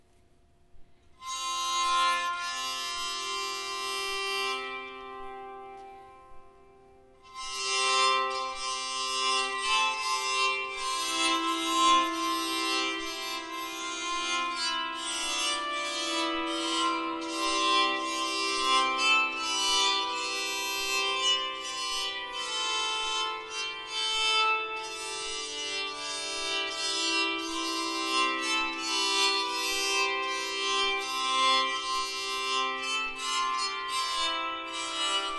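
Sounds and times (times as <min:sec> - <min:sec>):
bowed psaltery: 0:01.2 - 0:35.3
double bow tenor: 0:07.5 - 0:23.8, 0:24.6 - 0:35.3.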